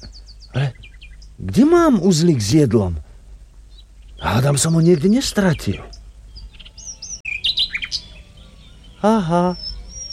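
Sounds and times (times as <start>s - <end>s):
small bird chirping and tweeting: 0.0s - 2.8s, 3.6s - 10.1s
soft outdoor noise: 0.0s - 10.1s
speech: 1.4s - 3.0s, 4.4s - 6.0s, 9.0s - 9.6s.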